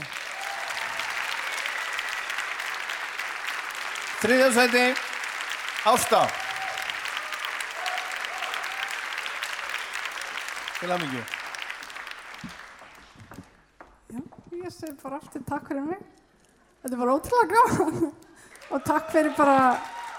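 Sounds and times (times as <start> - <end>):
audience clapping in a hall: 0.0 - 14.0, 18.2 - 20.1
speech: 4.2 - 5.1, 5.8 - 6.4, 10.8 - 11.4, 14.7 - 16.2, 16.8 - 19.9.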